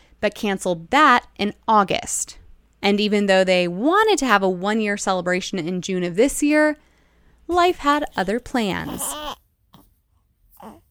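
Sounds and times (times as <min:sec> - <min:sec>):
speech: 0:00.2 - 0:06.9, 0:07.5 - 0:09.4
newborn baby girl crying: 0:07.7 - 0:09.4, 0:10.6 - 0:10.8.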